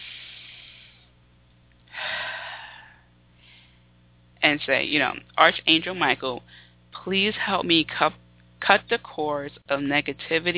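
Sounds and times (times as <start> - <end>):
deep breath drawn in during a guided spiritual meditation: 0.0 - 1.2, 1.9 - 3.9, 6.4 - 6.8
speech: 4.4 - 10.5.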